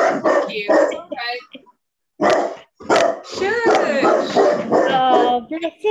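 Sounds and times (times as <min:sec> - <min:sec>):
female dog barking at someone at the door: 0:00.0 - 0:01.1, 0:02.2 - 0:05.4.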